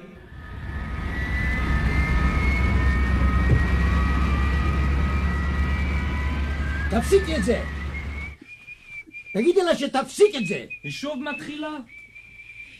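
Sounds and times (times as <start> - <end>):
airplane engine roar during takeoff: 0.0 - 8.4
speech: 7.0 - 7.8, 9.3 - 12.0.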